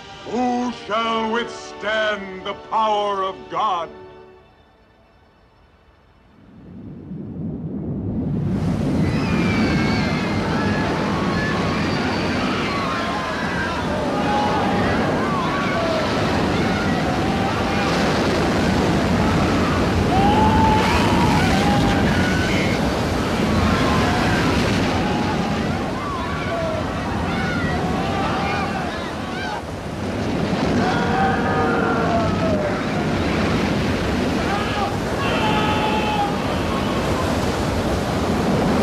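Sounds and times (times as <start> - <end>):
Red Sea waves crashing and closing over people: 0.0 - 4.5, 5.8 - 38.8
speech: 0.2 - 4.0
indistinct human voices crying out: 9.2 - 18.4, 19.0 - 29.8, 30.6 - 33.6, 34.2 - 37.7.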